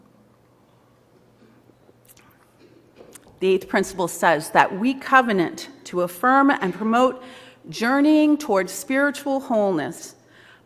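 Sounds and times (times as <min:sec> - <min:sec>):
speaker sipping and swallowing water: 0:01.4 - 0:03.4
faint wet mouth noises: 0:01.8 - 0:03.4
speech: 0:03.4 - 0:10.2.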